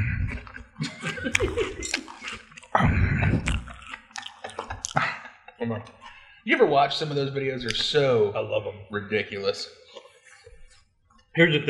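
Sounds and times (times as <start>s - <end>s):
laughter: 0.3s - 7.1s
crunching and chewing of crunchy breakfast cereal: 0.4s - 2.8s, 3.4s - 5.1s
speech: 5.7s - 9.8s, 11.4s - 11.6s.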